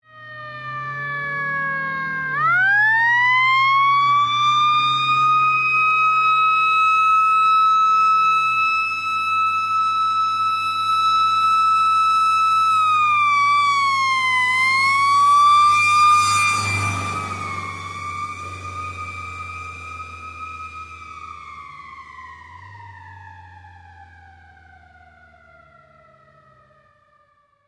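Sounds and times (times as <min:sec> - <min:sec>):
fire truck: 0:00.0 - 0:27.6.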